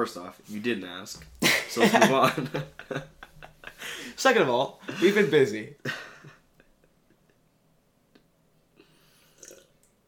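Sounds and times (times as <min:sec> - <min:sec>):
speech: 0:00.0 - 0:03.1, 0:03.8 - 0:06.0
laughter: 0:01.4 - 0:04.2
person sipping a drink with soft slurping and breathy intake: 0:08.8 - 0:09.9.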